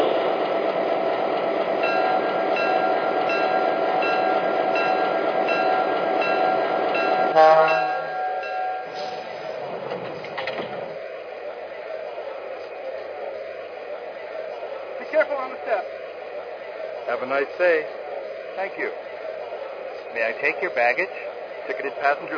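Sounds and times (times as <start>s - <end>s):
passenger train rumble pulling into a station: 0.0s - 22.3s
passenger train brakes squealing: 1.0s - 22.3s
passenger train clanks: 1.8s - 11.0s
passenger train hiss: 8.9s - 9.8s
speech: 17.2s - 18.0s, 18.6s - 19.0s, 20.2s - 22.3s.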